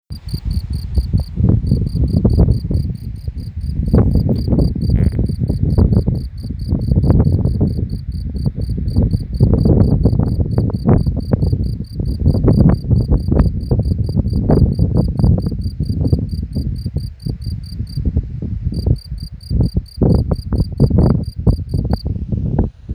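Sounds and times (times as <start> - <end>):
field cricket chirping: 0.1 - 18.1, 18.7 - 22.0.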